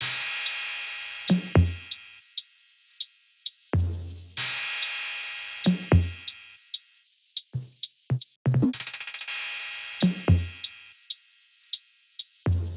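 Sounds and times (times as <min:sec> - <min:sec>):
percussion loop 116: 0:00.0 - 0:02.4, 0:05.6 - 0:06.8, 0:07.4 - 0:12.7.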